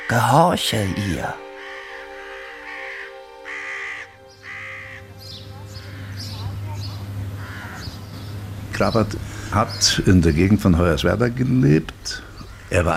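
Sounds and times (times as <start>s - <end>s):
ravens croaking from a perch: 0.0s - 12.9s
speech: 0.1s - 1.4s, 8.8s - 12.9s
low steady hum: 4.1s - 12.9s.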